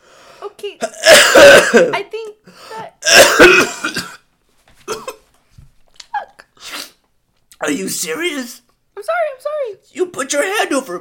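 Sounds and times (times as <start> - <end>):
speech: 0.4 - 4.1, 7.7 - 10.9
person coughing: 0.8 - 2.0, 2.8 - 5.3.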